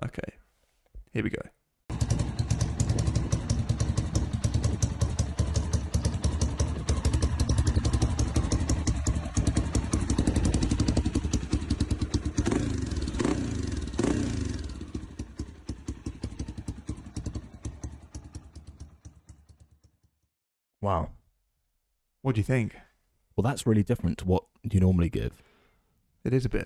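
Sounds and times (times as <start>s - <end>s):
speech: 1.2s - 1.6s, 20.8s - 21.1s, 22.2s - 22.8s, 23.4s - 25.5s, 26.2s - 26.6s
single-cylinder motorcycle engine idling and revving: 1.9s - 20.3s.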